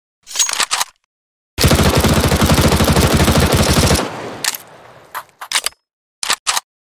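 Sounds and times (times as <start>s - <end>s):
MP7 weapon sounds: 1.6s - 5.7s.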